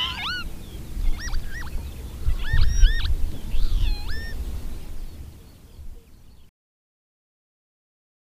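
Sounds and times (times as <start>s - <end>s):
Northern lapwing calling: 0.0s - 5.1s
low rumbling background noise: 0.0s - 6.5s.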